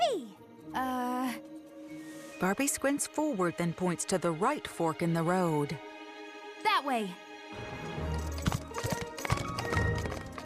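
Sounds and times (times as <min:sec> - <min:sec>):
speech: 0:00.7 - 0:01.1, 0:02.4 - 0:05.9, 0:06.8 - 0:07.8
horses galloping along a dirt path: 0:08.1 - 0:10.4.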